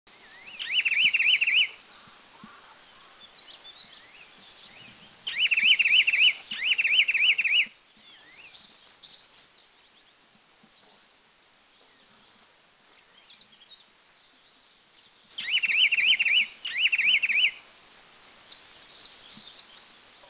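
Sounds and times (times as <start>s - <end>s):
Bar-winged Wren Babbler calling in Dirang India: 0.2s - 4.2s, 4.8s - 9.2s, 15.4s - 19.7s.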